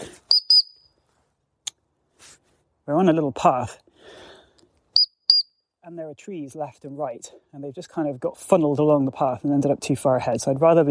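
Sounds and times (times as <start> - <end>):
shrill dog whistle calling dogs back along a tree-lined path: 0.3 - 0.9, 5.0 - 5.6
speech: 2.9 - 3.8, 5.8 - 10.8.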